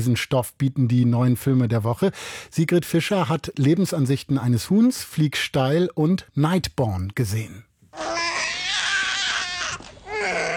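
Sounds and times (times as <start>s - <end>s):
speech: 0.0s - 8.3s
newborn baby boy crying in a film scene: 8.0s - 10.5s.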